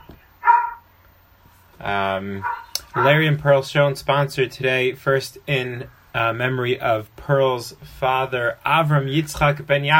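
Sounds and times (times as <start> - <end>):
dog barking: 0.4 - 0.8, 2.4 - 3.2
speech: 1.8 - 9.9.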